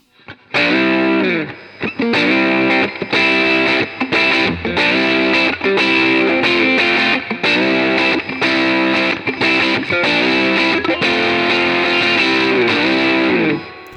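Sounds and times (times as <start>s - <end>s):
loud electric guitar through a fuzz overdrive pedal in high-pass mode playing a choppy riff: 0.0s - 13.8s.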